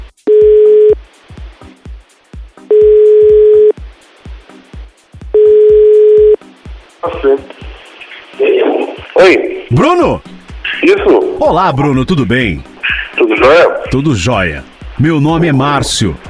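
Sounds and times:
telephone line tones while placing a call: 0:00.3 - 0:01.0, 0:02.7 - 0:03.7, 0:05.4 - 0:06.4
speech: 0:07.2 - 0:07.6, 0:09.2 - 0:16.2.

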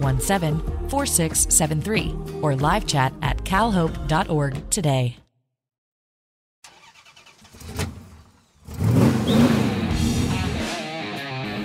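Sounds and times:
speech: 0:00.0 - 0:05.2
race car engines starting and revving: 0:07.6 - 0:10.7.

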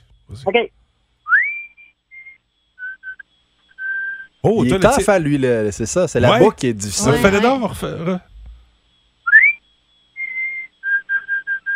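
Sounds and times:
speech: 0:00.3 - 0:00.8, 0:04.4 - 0:08.3
person whistling a birdlike song: 0:01.3 - 0:04.3, 0:10.2 - 0:11.7.

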